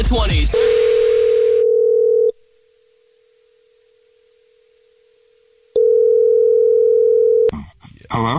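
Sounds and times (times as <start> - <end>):
phone line noise: 0.6 - 2.4, 5.7 - 7.5
telephone dial tone: 0.6 - 2.4, 5.8 - 7.5.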